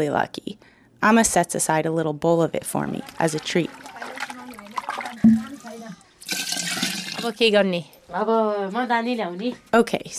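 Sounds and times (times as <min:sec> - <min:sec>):
speech: 0:00.0 - 0:04.1, 0:07.2 - 0:10.1
warm water pouring into a teko pot holding yogurt: 0:02.9 - 0:07.4.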